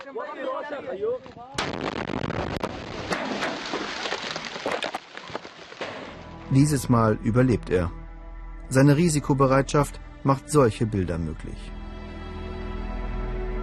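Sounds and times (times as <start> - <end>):
speech: 0.1 - 2.8, 6.5 - 8.0, 8.7 - 11.8
artillery shell exploding on impact in a combat zone: 1.6 - 4.6.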